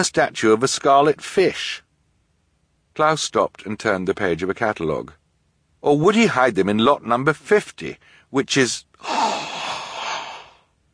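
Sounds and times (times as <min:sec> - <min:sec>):
speech: 0:00.0 - 0:01.8, 0:03.0 - 0:05.2, 0:05.8 - 0:09.3
sharp gasp: 0:09.0 - 0:10.7.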